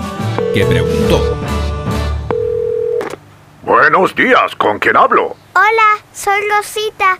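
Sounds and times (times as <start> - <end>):
telephone ringing with a steady electronic tone: 0.4 - 1.6, 2.3 - 3.2
dense buzzy hum: 0.4 - 7.1
speech: 0.5 - 1.5, 3.7 - 7.1.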